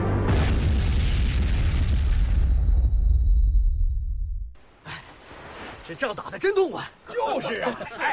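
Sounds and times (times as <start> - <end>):
enemy ammunition depot exploding in battle: 0.2 - 4.5
speech: 5.9 - 8.1
laughter: 6.1 - 8.1.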